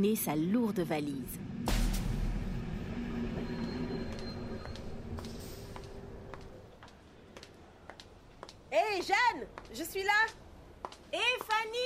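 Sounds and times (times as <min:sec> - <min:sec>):
speech: 0:00.0 - 0:01.6, 0:08.7 - 0:10.4, 0:11.1 - 0:11.8
train rumbling at a railway station platform: 0:00.9 - 0:07.1.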